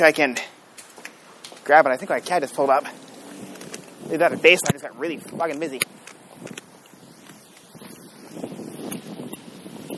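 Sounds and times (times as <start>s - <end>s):
speech: 0.0s - 0.6s, 1.6s - 3.0s, 4.1s - 6.0s
wind buffeting a microphone: 2.3s - 9.9s.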